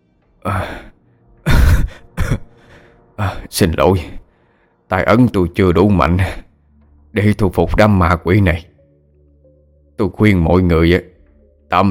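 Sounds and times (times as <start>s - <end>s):
speech: 0.4s - 0.9s, 3.2s - 4.2s, 4.9s - 6.5s, 7.1s - 8.7s, 10.0s - 11.1s
man coughing violently after collapsing to the ground: 1.4s - 2.6s.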